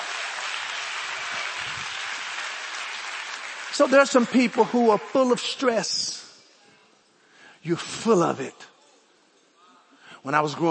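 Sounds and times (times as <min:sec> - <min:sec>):
audience clapping hands: 0:00.0 - 0:06.2
speech: 0:03.8 - 0:06.2, 0:07.6 - 0:08.7, 0:10.2 - 0:10.7.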